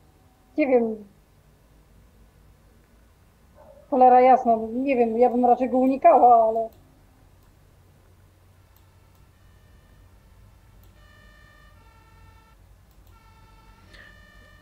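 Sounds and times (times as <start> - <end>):
low city rumble: 0.0 - 13.0
speech: 0.6 - 1.1, 3.9 - 6.8
police and fire sirens wailing across a city: 9.4 - 14.6.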